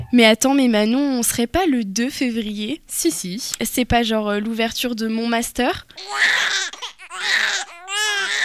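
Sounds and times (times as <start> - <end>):
speech: 0.2 - 7.6
babies crying: 6.0 - 8.4.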